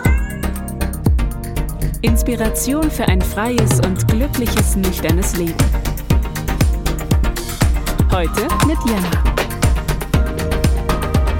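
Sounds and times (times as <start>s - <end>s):
cat meowing: 0.0s - 0.7s
short rhythmic musical backing with pulsing beats: 0.0s - 11.3s
speech: 2.0s - 5.9s, 8.2s - 9.4s.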